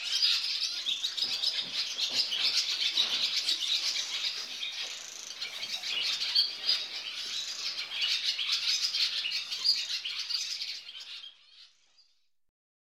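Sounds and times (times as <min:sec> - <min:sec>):
barn swallow twittering song: 0:00.0 - 0:12.2.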